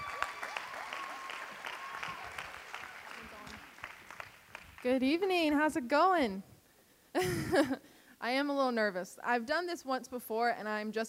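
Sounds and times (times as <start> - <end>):
audience clapping to welcome a speaker at an evening church gathering: 0.0 - 5.3
speech: 4.8 - 6.5, 7.1 - 11.0.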